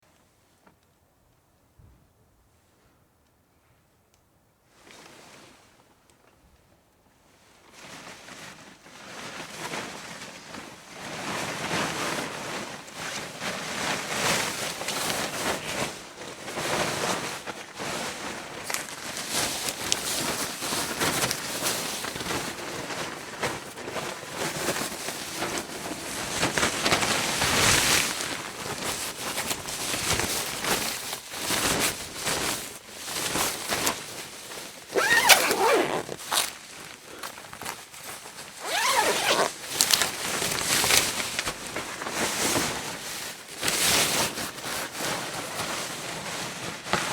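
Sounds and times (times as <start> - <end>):
radiation suit being put on and taken off: 7.6 - 47.1.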